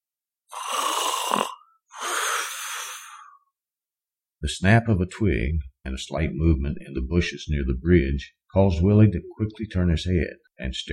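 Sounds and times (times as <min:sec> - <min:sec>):
man snoring heavily in drunken sleep: 0:00.5 - 0:03.3
speech: 0:04.4 - 0:10.9.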